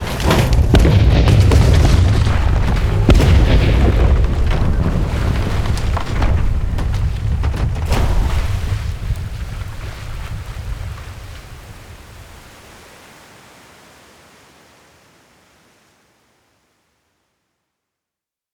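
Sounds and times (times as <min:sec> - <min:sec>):
ship being destroyed: 0:00.0 - 0:12.5.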